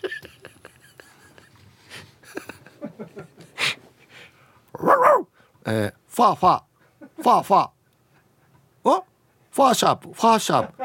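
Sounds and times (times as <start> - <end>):
person laughing: 0.0 - 1.6, 2.2 - 3.6
pet dog giving a drawn-out bark: 4.8 - 5.3
speech: 5.7 - 7.8, 8.8 - 10.8.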